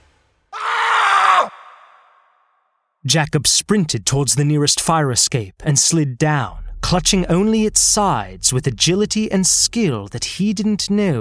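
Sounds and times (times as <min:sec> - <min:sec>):
strained harsh scream: 0:00.5 - 0:02.3
speech: 0:03.1 - 0:11.1.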